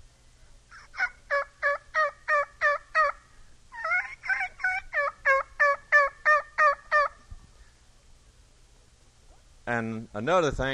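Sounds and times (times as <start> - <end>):
turkey gobbling: 0.7 - 7.7
speech: 9.8 - 10.7.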